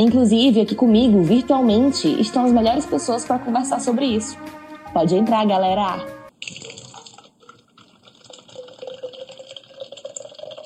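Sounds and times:
speech: 0.0s - 6.8s
water pouring steadily into a glass with gurgling splash: 6.3s - 10.6s.

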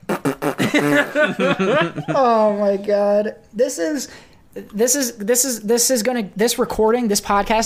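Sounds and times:
voice imitating fart noises as a producer tag: 0.0s - 1.2s
laughter: 0.6s - 2.4s
speech: 0.7s - 7.6s.

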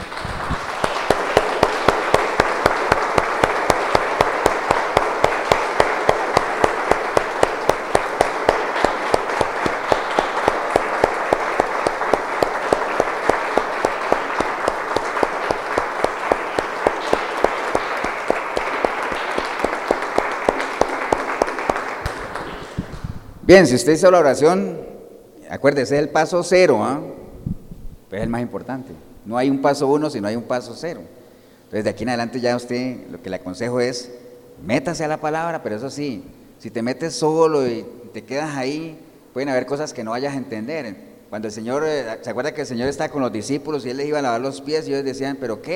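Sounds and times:
crowd applauding with a rhythmic beat: 0.0s - 23.2s
speech: 23.5s - 24.8s, 25.6s - 27.2s, 28.2s - 45.7s.

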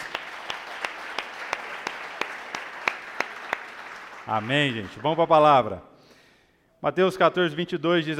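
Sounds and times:
room full of people applauding: 0.0s - 5.8s
speech: 4.3s - 5.9s, 6.8s - 8.1s.

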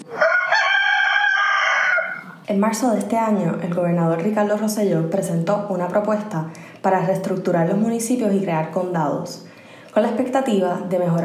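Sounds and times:
rooster crowing: 0.0s - 2.4s
speech: 2.5s - 11.2s.

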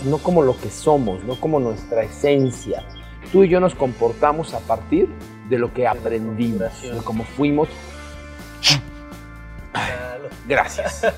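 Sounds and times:
speech: 0.0s - 7.9s, 8.6s - 8.9s, 10.2s - 11.1s
person sneezing: 8.6s - 9.0s
laughter: 9.8s - 11.1s.

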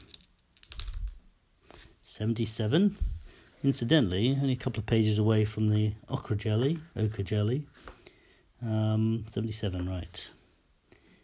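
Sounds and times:
plastic dice rattling and clattering: 0.0s - 1.3s
speech: 2.1s - 7.9s, 8.6s - 10.4s.

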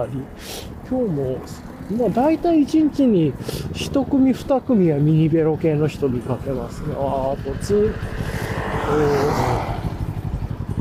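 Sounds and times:
speech: 0.0s - 9.8s
touring motorcycle engine passing by: 0.7s - 10.7s.

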